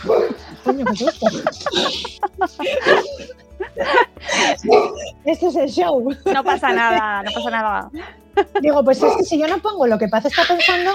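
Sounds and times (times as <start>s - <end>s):
dog barking in short loud bursts: 0.0s - 0.4s, 2.8s - 3.3s, 4.6s - 5.1s, 9.0s - 9.4s, 10.3s - 10.9s
laughter: 0.0s - 5.1s, 6.0s - 9.2s
speech: 0.7s - 3.1s, 5.3s - 10.9s.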